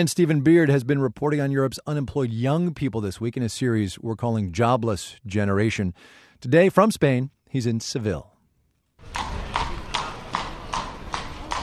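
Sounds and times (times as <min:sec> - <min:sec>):
speech: 0:00.0 - 0:08.3
horse hooves clip-clopping on hard pavement: 0:09.0 - 0:11.6
street noise: 0:09.0 - 0:11.6
carriage wheels rumbling: 0:09.1 - 0:11.6.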